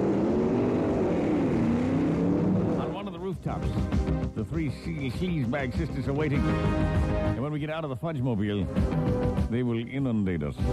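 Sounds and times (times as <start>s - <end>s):
car engine drone while driving fast: 0.0s - 7.4s
speech: 3.5s - 10.7s.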